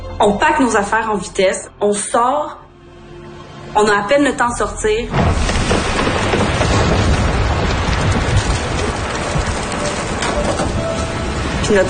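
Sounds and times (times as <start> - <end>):
speech: 0.2 - 2.6, 3.7 - 5.5
low rumbling: 5.1 - 11.8
torrential rain: 5.2 - 11.8.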